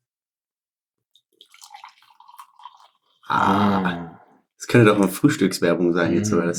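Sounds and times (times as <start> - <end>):
coffee bubbling and gurgling in a French press: 1.2 - 4.4
speech: 3.3 - 4.0, 4.7 - 6.5.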